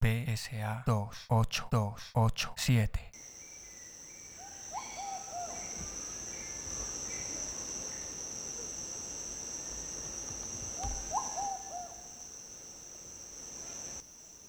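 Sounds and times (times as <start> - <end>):
speech: 0.4 - 3.4
Huaytafofo dove cooing: 3.2 - 14.4
high insect buzz: 3.2 - 14.4.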